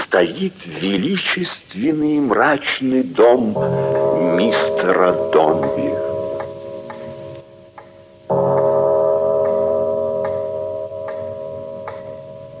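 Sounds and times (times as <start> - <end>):
speech: 0.1 - 6.1
house clock ticking: 3.5 - 12.2.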